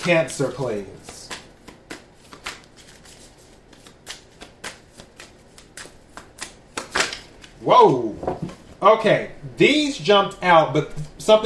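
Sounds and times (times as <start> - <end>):
speech: 0.0 - 1.2, 7.6 - 11.4
tarot cards being shuffled: 0.0 - 7.6.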